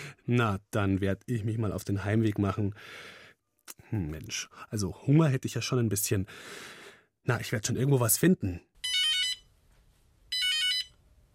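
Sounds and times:
speech: 0.2 - 8.7
telephone ringing in bright electronic bursts: 8.8 - 9.5, 10.3 - 11.0.

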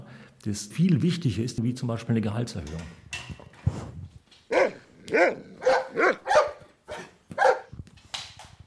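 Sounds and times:
speech: 0.4 - 3.0, 5.1 - 6.1
dog barking loud sharp barks: 4.5 - 7.7.

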